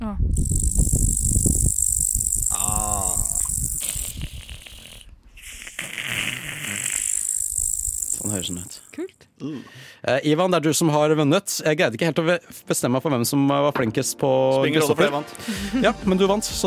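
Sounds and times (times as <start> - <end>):
rough rattling and crackling noises: 0.3 - 4.3, 6.8 - 8.9
cicada buzzing: 0.3 - 5.0, 5.6 - 9.0
speech: 8.5 - 8.7, 9.4 - 16.6
laughter: 15.4 - 16.0.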